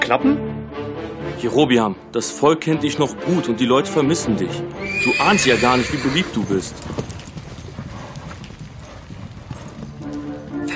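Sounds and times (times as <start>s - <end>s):
speech: 0.1s - 0.5s, 1.3s - 7.2s
horse hooves clip-clopping as rider rides away: 4.8s - 10.7s.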